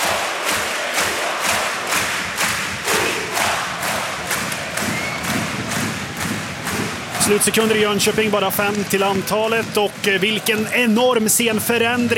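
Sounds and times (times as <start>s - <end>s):
ice hockey crowd in an arena in Gothenburg singing and chanting after a goal: 0.0s - 8.4s
steady rhythmic pulse of beats: 0.0s - 12.1s
speech: 7.3s - 12.1s.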